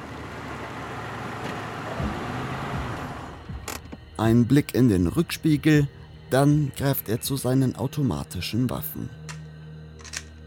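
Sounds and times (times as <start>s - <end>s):
car engine rumbling at low speed: 0.0s - 4.5s
speech: 4.2s - 9.2s.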